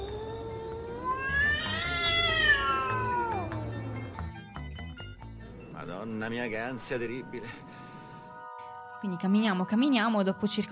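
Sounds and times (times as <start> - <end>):
two cats fighting in the distance: 0.0 - 4.0
speech: 6.0 - 7.8, 9.0 - 10.7.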